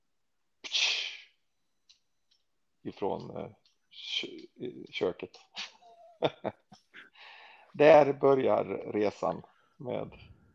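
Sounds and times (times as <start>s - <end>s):
voice imitating a beer can being opened: 0.7s - 1.2s
speech: 2.8s - 5.6s, 6.2s - 6.8s, 7.8s - 10.3s
laughter: 5.6s - 6.7s.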